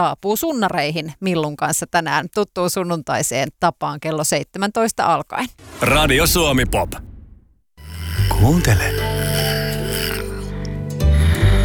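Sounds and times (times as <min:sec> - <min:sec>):
speech: 0:00.0 - 0:07.1, 0:08.2 - 0:09.4
muskrat snoring on a theme-park sound trail: 0:07.8 - 0:10.8.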